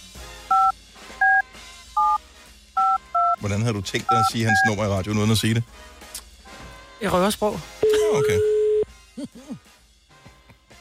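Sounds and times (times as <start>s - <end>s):
telephone keypad dialing tones: 0.5s - 1.4s, 2.0s - 2.2s, 2.8s - 3.4s, 4.1s - 4.7s, 7.8s - 8.8s
speech: 3.4s - 6.1s, 7.0s - 8.5s.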